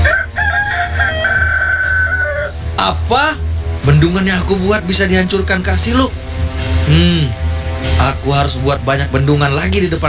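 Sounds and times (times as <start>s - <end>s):
rooster crowing: 0.0s - 2.6s
speech: 2.8s - 6.2s, 6.9s - 10.0s.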